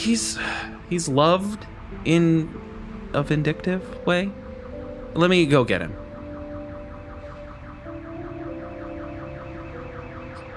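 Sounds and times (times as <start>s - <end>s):
speech: 0.0s - 4.4s, 5.2s - 6.0s
car alarm blaring with whooping tones: 2.6s - 10.5s.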